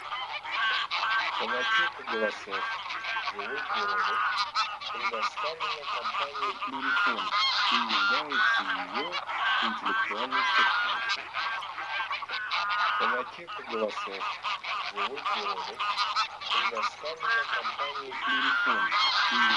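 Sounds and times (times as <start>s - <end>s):
greater white-fronted goose calling: 0.0s - 19.5s.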